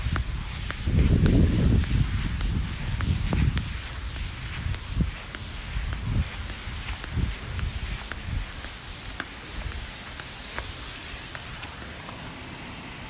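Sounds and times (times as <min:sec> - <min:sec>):
footsteps crunching along an outdoor path: 0:00.0 - 0:12.2.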